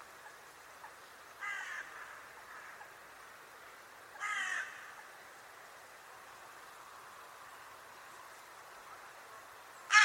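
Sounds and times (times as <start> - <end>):
continuous background hiss: 0.0 - 10.0
bird giving hoarse grating caws: 1.4 - 3.0, 4.2 - 5.1, 9.9 - 10.0.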